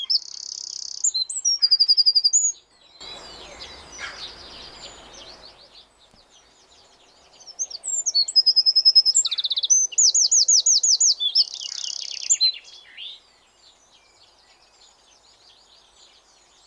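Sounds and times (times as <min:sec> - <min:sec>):
Eurasian wren Troglodytes troglodytes singing: 0:00.0 - 0:16.6.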